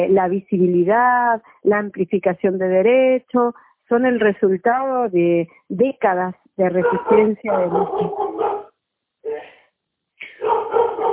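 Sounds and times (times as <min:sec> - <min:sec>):
speech: 0:00.0 - 0:08.3
dog barking: 0:06.8 - 0:08.7, 0:10.3 - 0:11.1.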